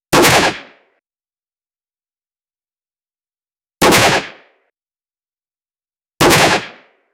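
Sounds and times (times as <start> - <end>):
gunshots: 0.1 - 0.9, 3.8 - 4.6, 6.2 - 7.0.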